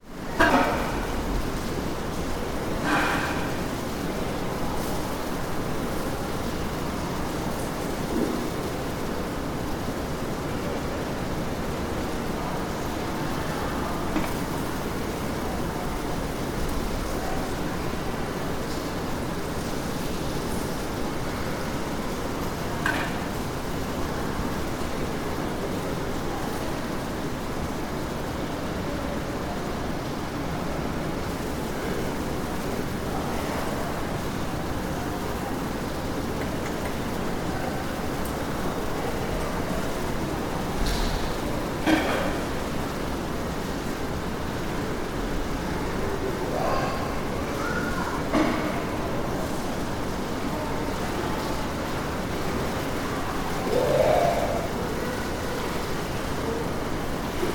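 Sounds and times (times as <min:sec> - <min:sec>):
spa ambience: 0:00.0 - 0:57.5.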